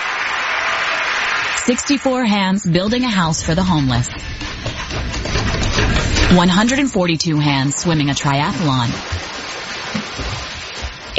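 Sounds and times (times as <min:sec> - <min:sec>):
large audience applauding: 0:00.0 - 0:02.6
speech: 0:01.7 - 0:05.6, 0:06.3 - 0:09.4.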